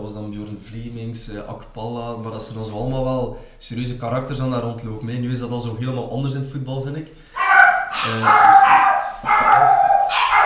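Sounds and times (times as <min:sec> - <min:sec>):
speech: 0:00.0 - 0:07.3, 0:08.0 - 0:08.8
several dogs barking and howling: 0:07.4 - 0:10.4.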